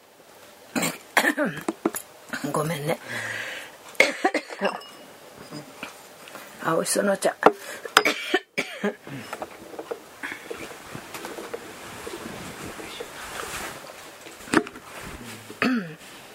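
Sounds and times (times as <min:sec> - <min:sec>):
person on a raised platform coughing and clearing phlegm from throat: 0:00.7 - 0:01.8, 0:04.0 - 0:04.8, 0:08.0 - 0:09.6, 0:15.2 - 0:16.0
speech: 0:01.4 - 0:01.8, 0:02.4 - 0:03.4, 0:04.6 - 0:04.9, 0:06.6 - 0:07.9, 0:08.8 - 0:09.4
breathy noise: 0:03.0 - 0:03.8, 0:09.0 - 0:14.0, 0:14.8 - 0:16.3.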